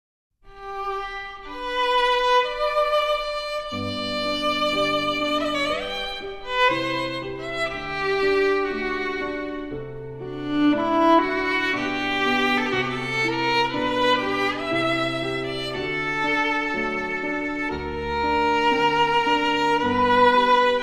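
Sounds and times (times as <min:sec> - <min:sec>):
romance for violin and piano: 0:00.4 - 0:20.8.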